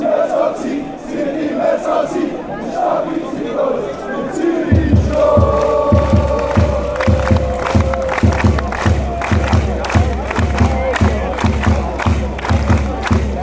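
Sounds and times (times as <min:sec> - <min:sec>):
crowd chanting in Zurich: 0:00.0 - 0:13.3
people clapping in Zurich: 0:04.4 - 0:13.3.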